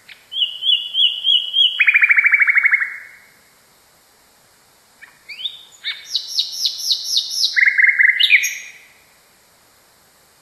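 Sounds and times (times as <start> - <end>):
Common nightingale song variation with whistles and rattling notes: 0.1 - 3.1, 5.0 - 8.9.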